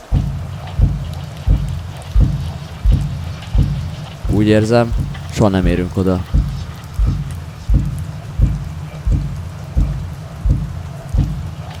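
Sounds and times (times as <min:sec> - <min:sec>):
steady rain pouring down: 0:00.0 - 0:11.7
speech: 0:04.3 - 0:06.4.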